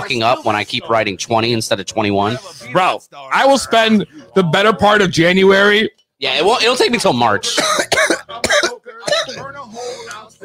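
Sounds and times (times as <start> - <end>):
speech: 0.1 - 8.4
person coughing harshly: 7.5 - 9.5.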